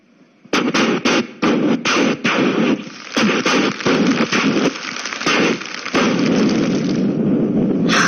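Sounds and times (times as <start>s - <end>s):
string of wedding firecrackers exploding: 0.5s - 7.9s.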